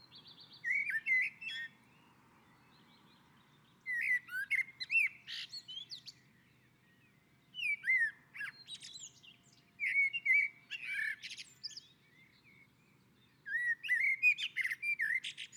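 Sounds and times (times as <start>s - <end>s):
common blackbird singing whistled phrases and twitters: 0.0s - 15.5s.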